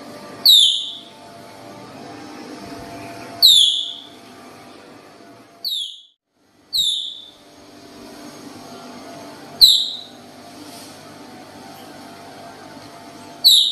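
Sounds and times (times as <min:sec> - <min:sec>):
Baird's tapir whistling with piercing descending squeals: 0:00.4 - 0:01.1, 0:03.4 - 0:04.1, 0:05.6 - 0:06.1, 0:06.8 - 0:07.4, 0:09.6 - 0:10.1, 0:13.4 - 0:13.7.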